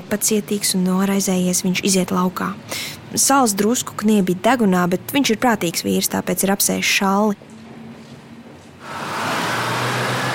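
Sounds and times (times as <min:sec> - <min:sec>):
speech: 0:00.1 - 0:07.5
large bus rumbling past: 0:08.8 - 0:10.3.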